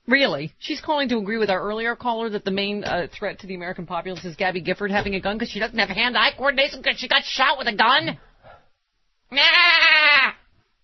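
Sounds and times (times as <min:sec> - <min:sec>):
speech: 0:00.2 - 0:08.3, 0:09.3 - 0:10.4
goat screaming: 0:09.3 - 0:10.5.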